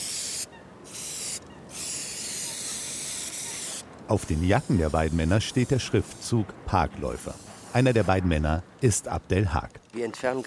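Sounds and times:
aerosol spray can spraying a bench to remove graffiti: 0.0 - 6.3
speech: 4.1 - 10.4.

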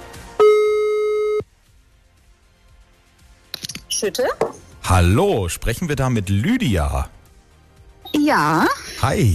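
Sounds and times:
electronic ringback tone from an outgoing phone call: 0.4 - 1.4
speech: 4.0 - 7.2, 8.3 - 9.3.

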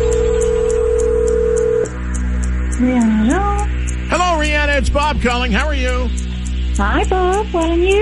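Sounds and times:
steady telephone tone: 0.0 - 1.9
short high telephone dialing blips: 0.0 - 7.9
speech: 2.8 - 3.5, 4.8 - 7.9.

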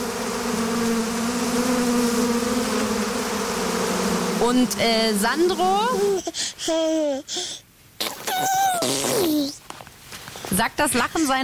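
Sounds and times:
swarm of bees buzzing: 0.0 - 6.3
speech: 4.5 - 7.6, 8.4 - 9.6, 10.5 - 11.4.

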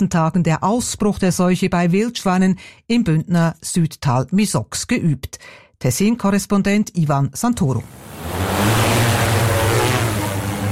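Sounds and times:
speech: 0.0 - 9.2
drone propellers whirring with motor hum: 7.8 - 10.7.

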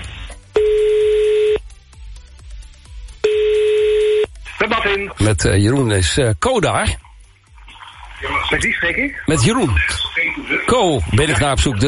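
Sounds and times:
telephone ringback tones: 0.6 - 1.6, 3.2 - 4.3
speech: 5.0 - 7.0, 8.2 - 11.8.

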